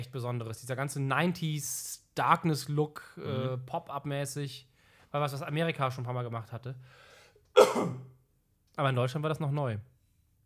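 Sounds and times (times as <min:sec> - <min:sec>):
speech: 0:00.0 - 0:08.1, 0:08.8 - 0:09.9
single cough: 0:07.6 - 0:08.1.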